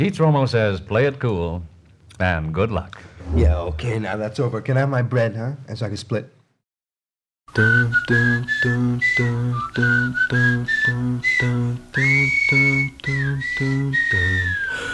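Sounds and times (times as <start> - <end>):
speech: 0.0 - 6.4, 7.5 - 14.9
person whistling a lively bouncy tune: 7.5 - 14.9.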